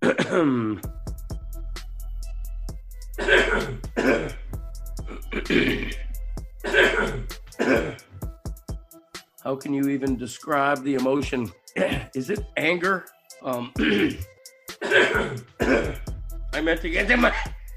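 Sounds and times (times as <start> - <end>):
person clearing throat: 0.0 - 0.9, 3.2 - 6.0, 6.6 - 8.1, 11.8 - 12.2, 13.5 - 16.1, 17.3 - 17.6
voiced grunt: 0.0 - 0.9, 3.2 - 4.4, 5.1 - 6.0, 6.7 - 8.1, 11.8 - 12.1, 13.5 - 16.1
speech: 0.3 - 1.0, 9.6 - 17.6.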